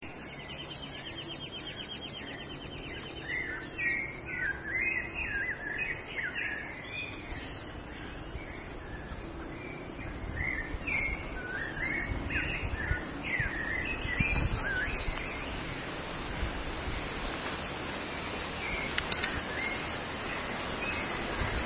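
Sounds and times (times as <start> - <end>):
low background rumble: 0.0 - 21.6
bird twittering: 0.1 - 21.6.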